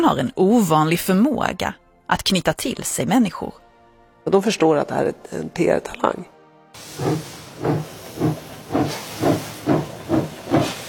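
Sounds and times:
speech: 0:00.0 - 0:03.6, 0:04.2 - 0:09.0
steam locomotive chuffing as the train pulls away: 0:06.8 - 0:10.8.

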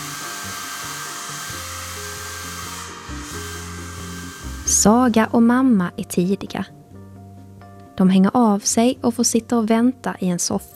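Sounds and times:
hair dryer blowing in a hair salon: 0:00.0 - 0:05.2
faint music from a speaker: 0:00.0 - 0:10.7
speech: 0:04.7 - 0:06.8, 0:08.0 - 0:10.7.

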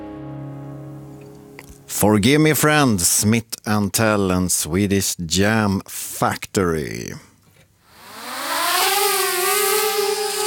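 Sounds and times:
speech: 0:01.9 - 0:07.3
police drone electric whine: 0:07.9 - 0:10.4.

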